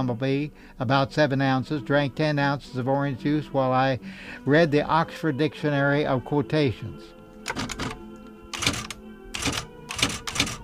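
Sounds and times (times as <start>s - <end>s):
speech: 0.0s - 7.9s
man typing a diary on a typewriter on 11 by 14 inch paper: 7.5s - 10.6s.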